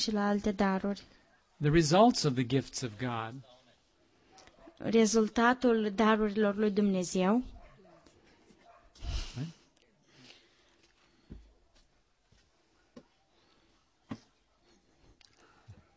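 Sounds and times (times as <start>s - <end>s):
speech: 0.0s - 3.5s, 4.8s - 7.6s, 9.4s - 9.6s
dog giving a sharp loud bark: 4.2s - 4.8s, 7.5s - 9.0s.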